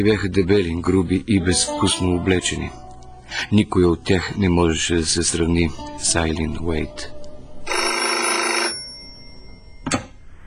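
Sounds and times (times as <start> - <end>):
speech: 0.0 - 7.2
telephone bell ringing with a buzzing trill: 7.7 - 9.8.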